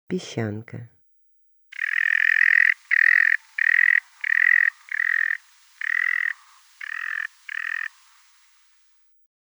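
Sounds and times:
sand martin calling: 1.7s - 9.0s.

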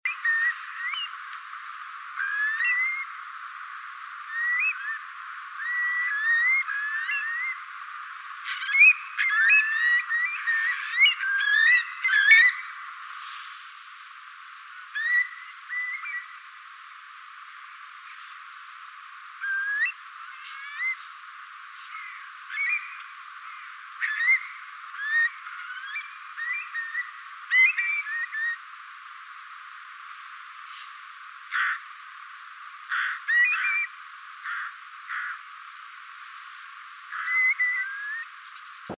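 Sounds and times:
Eurasian curlew calling: 0.1s - 1.2s, 2.2s - 3.1s, 4.2s - 7.6s, 8.4s - 12.9s, 14.9s - 16.4s, 19.4s - 21.1s, 21.8s - 28.6s, 31.5s - 31.9s, 32.9s - 35.4s, 37.1s - 38.9s.

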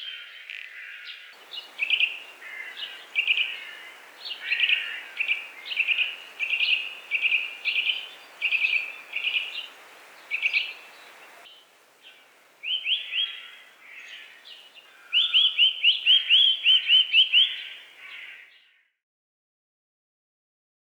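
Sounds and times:
Eurasian nuthatch calling: 1.4s - 18.3s.

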